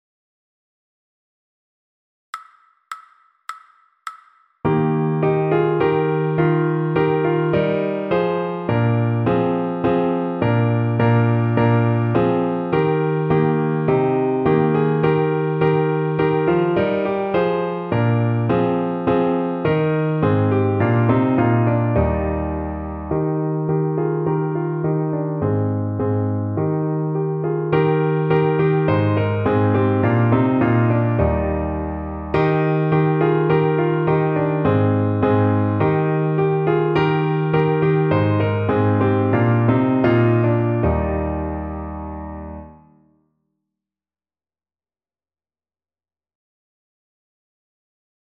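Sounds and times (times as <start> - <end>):
slow piano music: 4.6 - 43.0.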